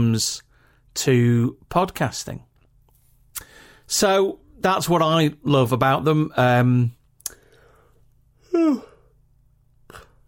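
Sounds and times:
speech: 0:00.0 - 0:02.5, 0:03.9 - 0:07.0, 0:08.5 - 0:08.9
quiet room hum: 0:00.0 - 0:10.2
person yawning: 0:08.4 - 0:09.2.

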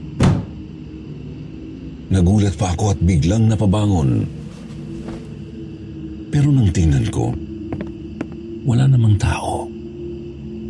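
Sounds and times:
door slamming shut: 0:00.2 - 0:00.6
speech: 0:02.1 - 0:04.4, 0:06.3 - 0:07.5, 0:08.7 - 0:09.7.

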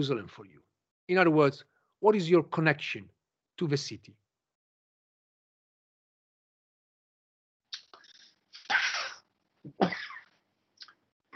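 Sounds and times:
speech: 0:00.0 - 0:04.2, 0:09.6 - 0:10.1
person coughing: 0:08.7 - 0:10.2.

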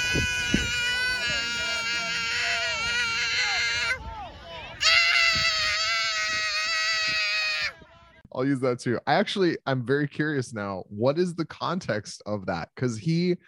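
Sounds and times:
young child screaming loudly: 0:00.0 - 0:04.0, 0:04.8 - 0:07.8
speech: 0:00.1 - 0:00.6, 0:08.4 - 0:13.4.

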